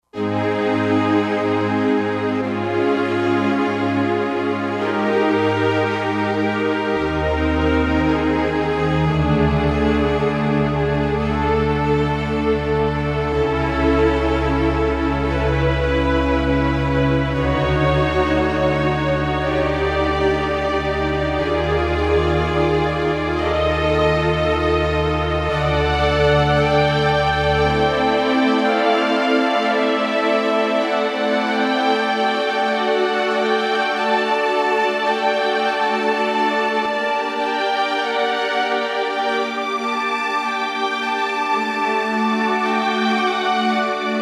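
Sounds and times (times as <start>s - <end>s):
silky strings patch on a Roland JD-990 synthesizer: 0.2s - 44.2s.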